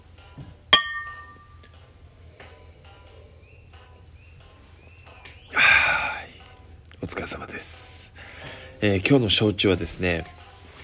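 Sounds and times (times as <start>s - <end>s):
glasses clinking in a toast with awamori: 0.8s - 1.6s
speech: 7.2s - 7.8s, 8.8s - 10.4s
breathy exhale after a sip: 8.2s - 8.8s.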